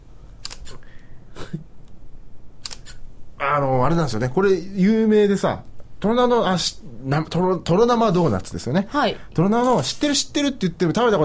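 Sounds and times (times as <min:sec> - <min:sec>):
low steady hiss: 0:00.0 - 0:11.2
camera shutter clicks while photographing fresh cream doughnuts: 0:00.4 - 0:00.7, 0:02.6 - 0:03.0
speech: 0:01.5 - 0:01.7, 0:03.4 - 0:11.2.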